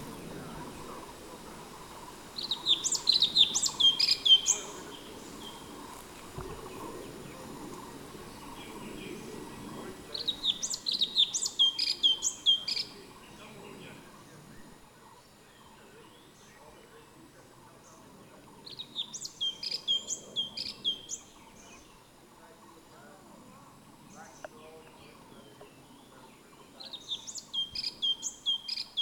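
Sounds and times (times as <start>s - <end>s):
orange-bellied leafbird song of rapid high twittering notes: 0.0s - 29.0s
steady low background hum: 0.0s - 29.0s.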